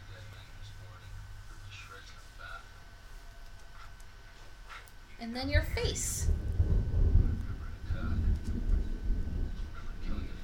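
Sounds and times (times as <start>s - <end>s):
speech: 5.2s - 6.4s
deep continuous thunder rumbling: 5.3s - 10.4s.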